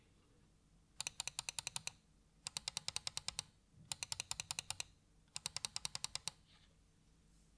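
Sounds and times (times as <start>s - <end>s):
Corsair Katar mouse left and right clicks: 1.0s - 6.4s.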